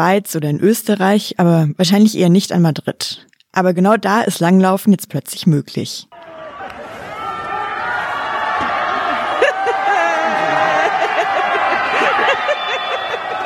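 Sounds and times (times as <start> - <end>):
speech: 0.0 - 6.3
crowd of people on a street cheering a cross-country skier: 6.1 - 13.4
people laughing: 8.1 - 13.4.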